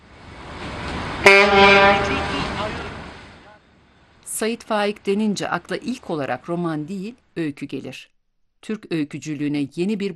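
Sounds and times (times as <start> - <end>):
ferry steam whistle blowing: 1.2 - 2.8
speech: 4.4 - 10.1.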